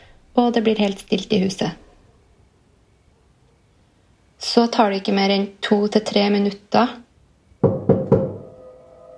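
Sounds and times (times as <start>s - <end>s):
speech: 0.4s - 1.8s, 4.5s - 7.0s
knocking on a wooden bedroom door: 7.6s - 8.5s.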